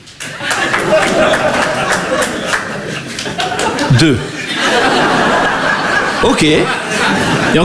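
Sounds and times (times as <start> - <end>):
audience applause: 0.1 - 6.0
chuckling: 0.2 - 7.6
speech: 4.0 - 4.4, 6.2 - 7.6.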